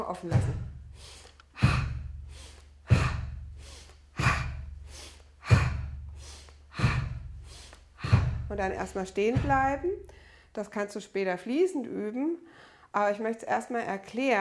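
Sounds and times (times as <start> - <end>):
speech: 0.0 - 1.8, 8.5 - 14.4
breathing in through the nose and out through the mouth during a breathing exercise: 0.7 - 8.8, 9.4 - 10.6, 12.4 - 13.0.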